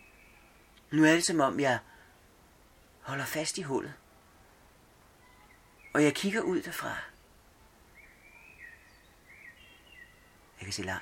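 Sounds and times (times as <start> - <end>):
bird singing warbling phrases: 0.0 - 1.0, 5.2 - 11.0
low steady outdoor hum: 0.0 - 11.0
speech: 0.9 - 1.9, 3.1 - 4.0, 6.0 - 7.1, 10.6 - 11.0.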